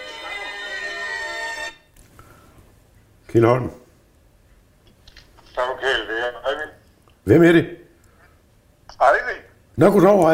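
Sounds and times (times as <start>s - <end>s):
telephone ringing: 0.0s - 1.9s
speech: 3.3s - 3.8s, 7.3s - 7.8s, 9.8s - 10.3s.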